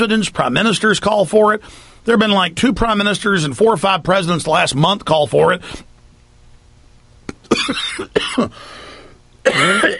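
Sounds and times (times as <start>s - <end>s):
speech: 0.0s - 5.9s, 7.7s - 8.8s, 9.4s - 9.9s
man clearing his throat: 7.3s - 8.6s, 9.4s - 9.9s
man coughing after inhaling spinach while eating: 7.3s - 8.6s, 9.4s - 9.9s.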